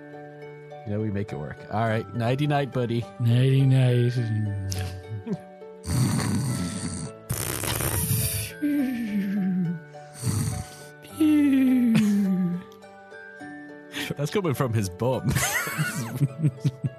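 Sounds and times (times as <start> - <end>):
speech: 0.9 - 6.0, 14.2 - 16.9
voice imitating snoring: 4.7 - 11.2
laughter: 11.6 - 12.4, 15.2 - 16.9.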